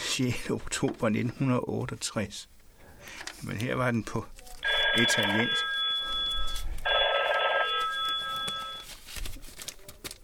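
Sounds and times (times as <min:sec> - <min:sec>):
speech: 0:00.2 - 0:04.4, 0:05.0 - 0:05.7
telephone bell ringing at a local radio station: 0:04.6 - 0:08.9.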